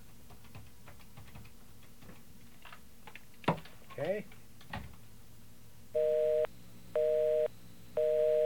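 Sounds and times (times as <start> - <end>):
telephone busy signal: 6.0 - 8.4.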